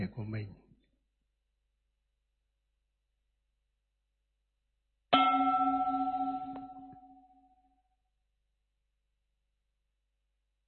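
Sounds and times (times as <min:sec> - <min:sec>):
speech: 0:00.0 - 0:00.6
guided mindfulness meditation bell struck and ringing: 0:05.2 - 0:07.6.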